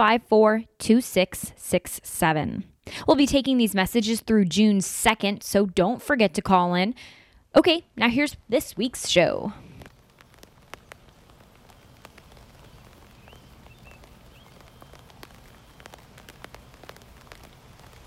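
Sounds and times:
speech: 0:00.0 - 0:09.7
steady rain falling: 0:08.0 - 0:18.0
sharp drips and patters striking a hard surface: 0:09.8 - 0:18.0
faint bird chirp: 0:11.6 - 0:16.0.

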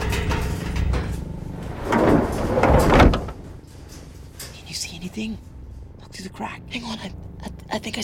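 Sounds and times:
scraping and thudding movement: 0:00.0 - 0:04.5
door opening and closing: 0:01.2 - 0:03.7
speech: 0:05.2 - 0:05.6, 0:06.2 - 0:08.0.

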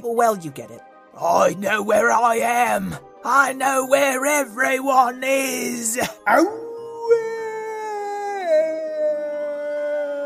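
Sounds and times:
speech: 0:00.0 - 0:07.3
werewolf howl: 0:06.2 - 0:10.2.

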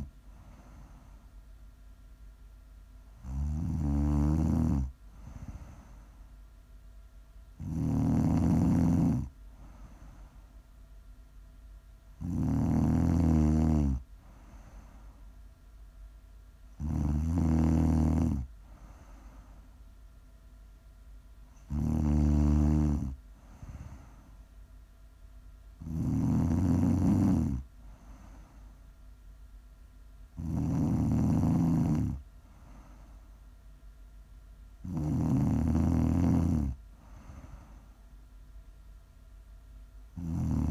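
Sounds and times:
soft breathing: 0:00.0 - 0:01.5, 0:04.8 - 0:06.5, 0:09.2 - 0:10.7, 0:14.0 - 0:15.5, 0:18.4 - 0:19.9, 0:23.0 - 0:24.6, 0:27.4 - 0:29.1, 0:31.6 - 0:33.7, 0:36.7 - 0:38.2
faint low hum: 0:00.0 - 0:40.6
loud rattling snores: 0:03.2 - 0:05.0, 0:07.6 - 0:09.3, 0:12.2 - 0:14.0, 0:16.8 - 0:18.5, 0:21.6 - 0:23.2, 0:25.8 - 0:27.7, 0:30.4 - 0:32.2, 0:34.8 - 0:36.8, 0:40.2 - 0:40.6.

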